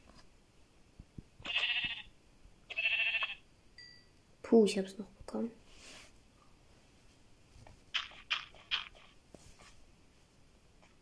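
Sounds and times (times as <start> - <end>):
sheep bleating in a video game: 1.4 - 2.1, 2.7 - 3.4
faint tone: 3.8 - 4.2
speech: 4.5 - 5.6.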